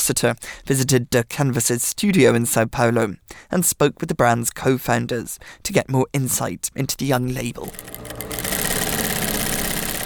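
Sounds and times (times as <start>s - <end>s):
speech: 0.0s - 8.3s
sewing machine running as a seamstress stitches a fall jacket: 7.6s - 10.0s.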